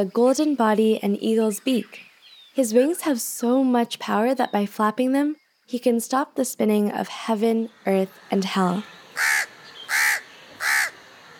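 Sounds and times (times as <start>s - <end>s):
speech: 0.0s - 9.5s
crow cawing: 9.2s - 11.0s.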